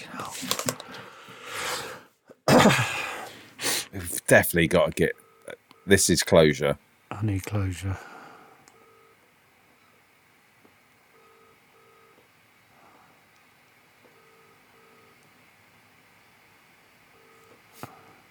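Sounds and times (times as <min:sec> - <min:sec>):
low hiss: 0:00.0 - 0:18.2
speech: 0:02.6 - 0:03.0, 0:03.9 - 0:05.2, 0:05.8 - 0:08.1
phone ringback tone with double-ring pattern: 0:05.2 - 0:05.9, 0:08.8 - 0:09.2, 0:11.1 - 0:12.2, 0:14.1 - 0:15.2, 0:17.1 - 0:17.6.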